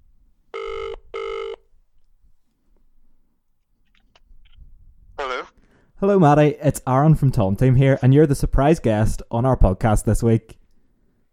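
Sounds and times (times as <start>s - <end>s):
electronic outgoing phone ringing tone: 0.6s - 1.6s
speech: 6.0s - 10.6s.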